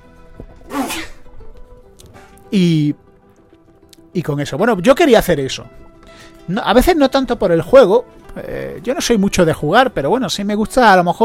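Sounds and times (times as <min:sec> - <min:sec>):
person sneezing: 0:00.7 - 0:01.2
speech: 0:02.5 - 0:03.1, 0:04.2 - 0:05.8, 0:06.5 - 0:11.2.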